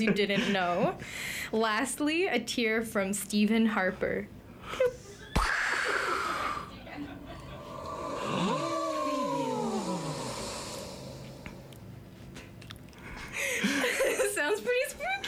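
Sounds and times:
speech: 0.0s - 5.0s
laughter: 4.8s - 7.7s, 13.4s - 15.2s
breathy wheezy vocal noises: 5.4s - 6.7s, 7.5s - 11.9s
voice imitating a spooky ghostly moan: 7.5s - 11.8s.

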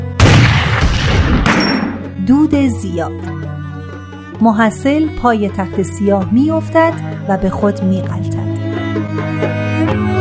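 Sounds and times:
gunfire volley from a row of kneeling pupils: 0.2s - 2.1s
gunshot crack: 0.2s - 2.1s
speech: 2.3s - 3.6s, 4.4s - 10.1s.

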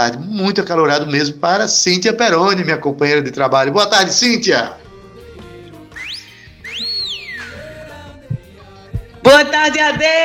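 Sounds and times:
speech: 0.0s - 4.8s, 9.2s - 10.2s
quiet backing music bed: 3.8s - 10.2s
loud whistled phrases: 5.9s - 8.0s.

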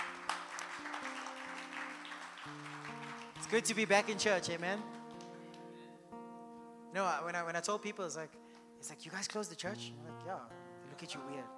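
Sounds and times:
church audience clapping: 0.0s - 5.7s
speech: 3.5s - 5.0s, 6.9s - 11.5s.

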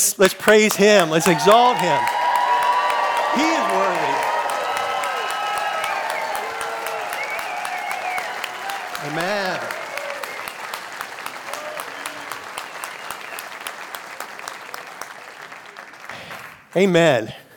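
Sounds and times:
speech: 0.1s - 2.2s, 3.4s - 3.9s, 16.7s - 17.4s
crowd applauding: 0.2s - 17.2s
cheers and whoops: 0.8s - 13.7s.

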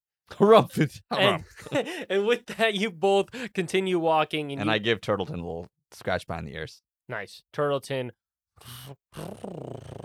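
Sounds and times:
speech: 0.4s - 10.0s
voice imitating a turtle purring like a cat: 8.6s - 10.0s.

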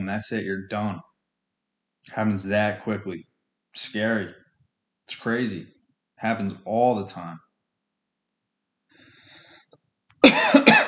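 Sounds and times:
speech: 0.0s - 1.1s, 2.0s - 4.4s, 5.1s - 7.4s
man coughing with something stuck in his throat: 10.2s - 10.8s.

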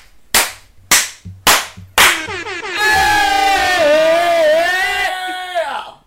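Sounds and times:
sharp slaps or claps: 0.0s - 3.0s
hosts shouting loudly: 2.6s - 5.8s.

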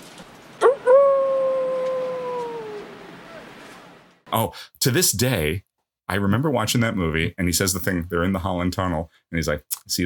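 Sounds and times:
wolf howling: 0.6s - 3.6s
speech: 4.3s - 10.0s.

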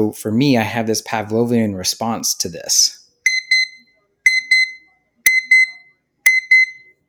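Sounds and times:
speech: 0.0s - 3.0s
timer alarm with bright tonal electronic chimes: 3.3s - 7.0s.

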